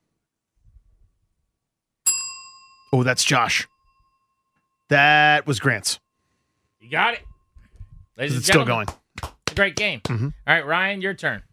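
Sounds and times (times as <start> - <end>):
bell struck and ringing: 2.1 - 5.2
speech: 2.9 - 3.7, 4.9 - 6.0, 6.8 - 7.3, 8.2 - 11.5.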